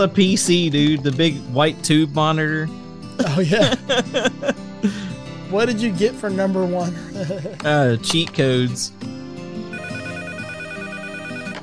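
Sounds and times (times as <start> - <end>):
speech: 0.0 - 9.1
laughter: 3.2 - 5.1, 6.8 - 7.9
landline telephone ringing: 9.7 - 11.6.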